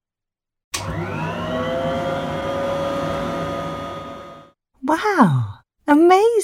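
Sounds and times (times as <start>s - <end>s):
robot vacuum cleaner starting and running: 0.8s - 4.5s
speech: 4.9s - 5.4s.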